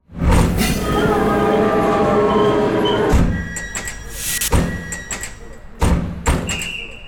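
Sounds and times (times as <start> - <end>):
very large train rumbling at a railway station: 0.0 - 5.3
hissing bursts: 4.1 - 5.0.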